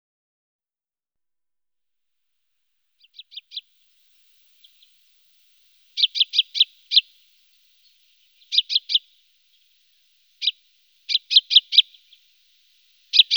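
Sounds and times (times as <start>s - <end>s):
common chaffinch giving rapid high clipped notes in a wetland area: 3.0s - 13.3s.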